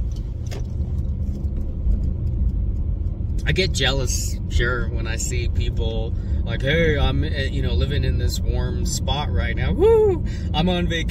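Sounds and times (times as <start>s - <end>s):
car driving through city streets, engine and tyre rumble: 0.0s - 11.0s
speech: 3.5s - 11.0s.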